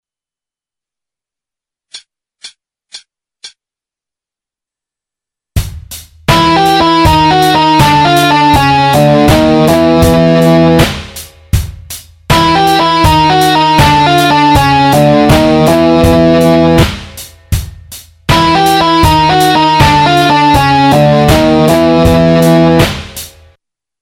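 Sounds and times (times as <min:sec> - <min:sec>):
blues ending phrase: 0:06.3 - 0:11.2, 0:12.3 - 0:17.2, 0:18.3 - 0:23.3.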